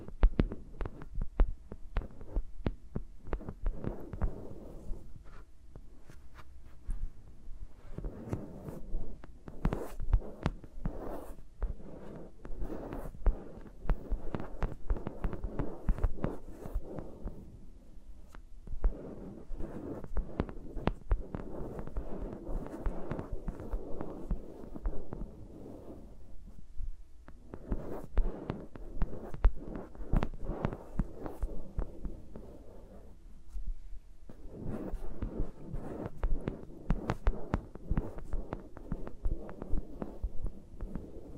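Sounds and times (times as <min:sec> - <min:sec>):
fingers rubbing, scratching and tapping microphones: 0:00.0 - 0:07.2, 0:07.8 - 0:17.6, 0:18.3 - 0:26.7, 0:27.3 - 0:41.3.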